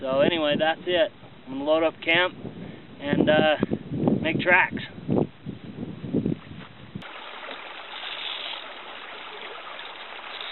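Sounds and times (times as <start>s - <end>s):
speech: 0.0s - 4.9s
flowing creek water rushing: 7.0s - 10.5s.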